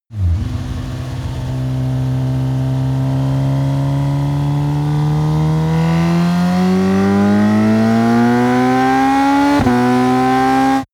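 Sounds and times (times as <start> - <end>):
sport bike motorcycle starting and accelerating: 0.1 - 10.9.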